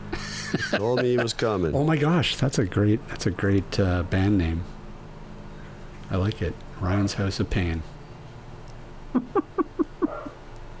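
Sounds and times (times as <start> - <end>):
laughter: 0.1 - 1.7, 9.1 - 10.3
speech: 0.5 - 4.8, 6.1 - 8.0, 9.1 - 9.4
American Cocker Spaniel barking: 10.0 - 10.4.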